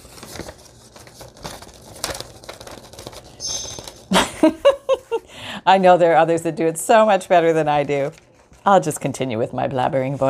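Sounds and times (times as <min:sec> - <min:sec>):
paper being handled in a paper-bag journal: 0:00.0 - 0:05.2, 0:06.9 - 0:09.2
speech: 0:05.6 - 0:10.2.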